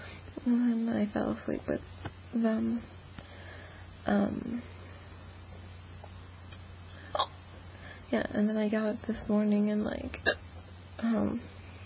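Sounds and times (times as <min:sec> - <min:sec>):
faint low hum: 0:00.0 - 0:11.8
speech: 0:00.4 - 0:03.0, 0:04.1 - 0:04.8, 0:08.1 - 0:10.4, 0:11.0 - 0:11.6
person hiccuping: 0:07.1 - 0:07.4, 0:10.2 - 0:10.5.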